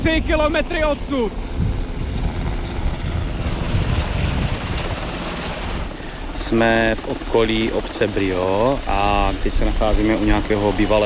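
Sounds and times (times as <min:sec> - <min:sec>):
speech: 0:00.0 - 0:01.5, 0:06.4 - 0:11.0
broad rush of wind-like noise from helicopters: 0:00.0 - 0:11.0
helicopters with full water buckets taking off to fight a fire: 0:00.0 - 0:11.0.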